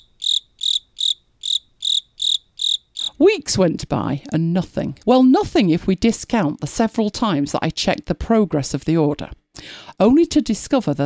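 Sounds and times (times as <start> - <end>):
crickets chirping: 0.0 - 3.2
speech: 3.2 - 11.0.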